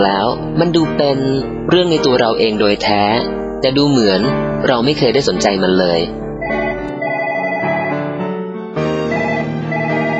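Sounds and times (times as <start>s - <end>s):
speech: 0.0s - 6.2s
electronic phone ringtone melody: 6.4s - 8.2s, 9.1s - 10.1s.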